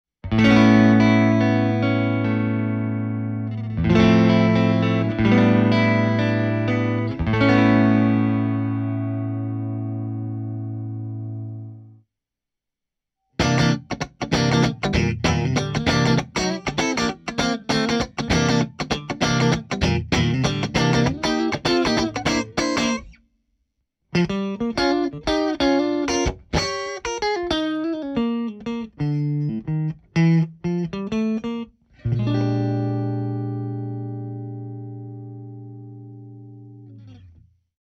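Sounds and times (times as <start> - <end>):
funk guitar tone: 0.2 - 11.9, 13.4 - 23.2, 24.1 - 37.4.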